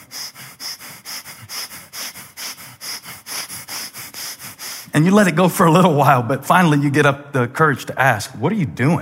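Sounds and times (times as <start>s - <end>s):
person sniffing rapidly, breathing in through the nose: 0.0s - 5.0s
speech: 5.0s - 9.0s.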